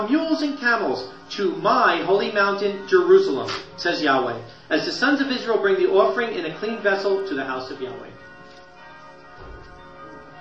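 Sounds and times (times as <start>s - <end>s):
speech: 0.0s - 8.2s
bells ringing: 0.0s - 10.3s.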